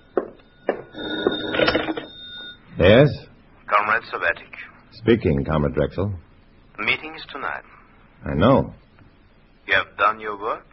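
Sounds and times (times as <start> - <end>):
telephone bell ringing: 0.4 - 2.7
speech: 2.8 - 3.2, 4.0 - 8.8, 9.7 - 10.7.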